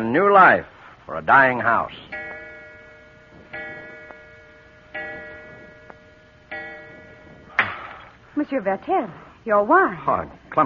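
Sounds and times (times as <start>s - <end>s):
speech: 0.1s - 2.2s, 8.4s - 10.6s
clock striking chimes: 1.4s - 8.2s.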